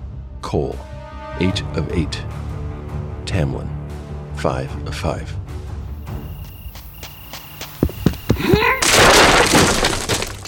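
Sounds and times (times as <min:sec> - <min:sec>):
speech: 0:00.5 - 0:02.5, 0:03.3 - 0:03.8, 0:04.4 - 0:05.4
sharp thuds: 0:07.3 - 0:10.4
debris clattering: 0:07.8 - 0:10.4
timber splintering: 0:07.9 - 0:10.4
wooden door smashed open: 0:08.8 - 0:10.4.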